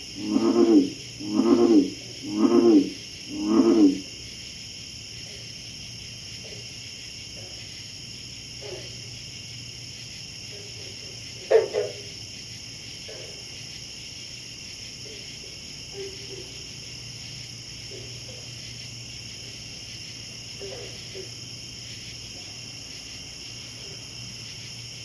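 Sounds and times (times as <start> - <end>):
frog croaking on a pond at night: 0.0 - 4.4, 8.5 - 9.3, 10.4 - 25.0.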